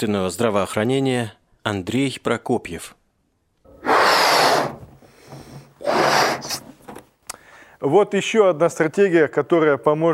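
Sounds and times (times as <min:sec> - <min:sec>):
speech: 0:00.0 - 0:03.0, 0:07.8 - 0:10.1
deep breathing in and out as a breathing exercise: 0:03.7 - 0:06.7, 0:07.3 - 0:07.8.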